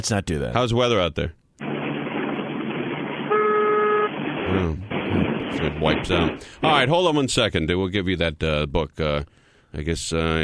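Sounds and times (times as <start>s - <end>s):
speech: 0.0s - 1.4s, 4.5s - 10.4s
rumbling road and engine background: 1.6s - 6.6s
truck horn honking: 3.3s - 4.2s.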